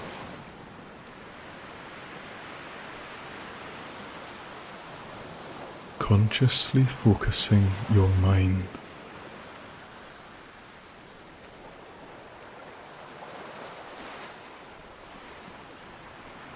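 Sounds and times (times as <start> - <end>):
ocean surf: 0.0 - 16.5
speech: 6.0 - 8.8.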